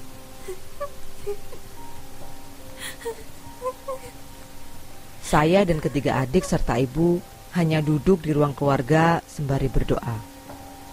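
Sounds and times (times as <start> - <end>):
steady hiss of noise: 0.0 - 10.9
woman crying and wailing: 0.4 - 1.8, 2.8 - 4.2, 5.3 - 6.9
speech: 0.5 - 1.6, 5.3 - 10.3.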